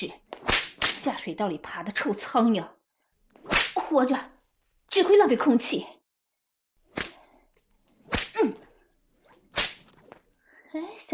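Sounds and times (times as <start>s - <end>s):
speech: 0.0s - 0.2s, 1.0s - 2.8s, 3.9s - 6.0s, 10.8s - 11.1s
whip lashing: 0.4s - 1.1s, 3.4s - 3.9s, 6.9s - 7.2s, 8.0s - 8.6s, 9.3s - 10.2s.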